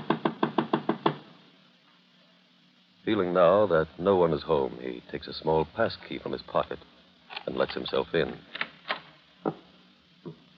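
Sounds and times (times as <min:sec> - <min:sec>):
knocking on a door: 0:00.0 - 0:01.2
speech: 0:03.1 - 0:08.6.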